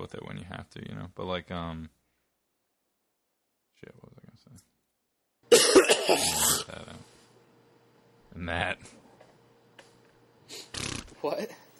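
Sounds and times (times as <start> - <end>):
speech: 0.0 - 2.0, 3.8 - 4.7, 6.1 - 7.2, 8.4 - 9.0, 10.5 - 11.6
sick person coughing: 5.5 - 6.8.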